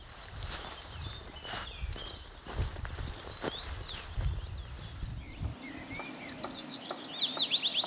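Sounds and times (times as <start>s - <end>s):
footsteps crunching through undergrowth: 0.0s - 6.2s
birds chirping: 0.6s - 7.8s.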